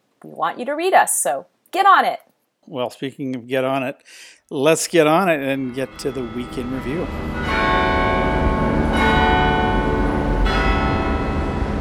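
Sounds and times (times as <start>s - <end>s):
speech: 0.2s - 7.8s
church bells pealing at an Anglican church in London: 5.4s - 11.7s.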